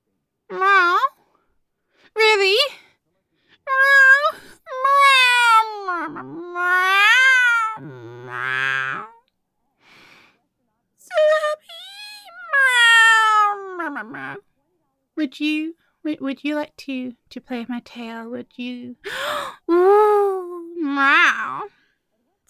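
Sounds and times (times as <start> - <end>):
person imitating whiny cat meows: 0.5 - 1.2, 3.7 - 9.2, 11.5 - 14.4, 19.7 - 21.7
speech: 15.3 - 19.4, 21.0 - 21.7.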